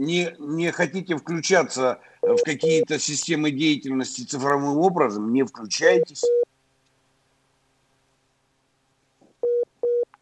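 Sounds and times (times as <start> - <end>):
speech: 0.0 - 6.4
steady beep tone on a phone line: 2.2 - 2.9, 6.2 - 6.4, 9.4 - 10.1.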